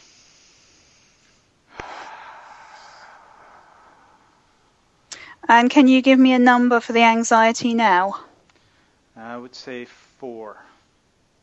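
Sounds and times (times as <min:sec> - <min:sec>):
deep comfortable breath during a tapping therapy session: 0:00.0 - 0:05.4, 0:08.6 - 0:09.1
speech: 0:05.4 - 0:08.3, 0:09.4 - 0:10.7.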